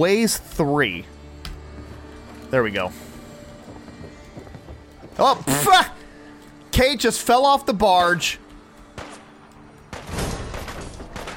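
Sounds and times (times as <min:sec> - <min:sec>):
speech: 0:00.0 - 0:01.2, 0:02.5 - 0:03.1, 0:05.2 - 0:06.0, 0:06.8 - 0:08.4
video game gunfire: 0:09.0 - 0:11.3.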